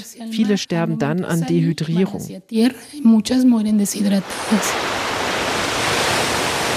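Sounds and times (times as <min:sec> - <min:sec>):
speech: 0:00.0 - 0:05.1
ocean waves breaking on a beach at Escobilla: 0:04.2 - 0:06.7.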